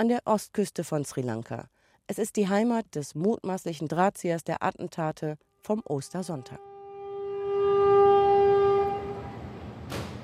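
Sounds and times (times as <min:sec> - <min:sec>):
speech: 0:00.0 - 0:06.7
loud steady train horn blaring: 0:06.2 - 0:09.9
train rumbling along the rails: 0:08.2 - 0:10.2.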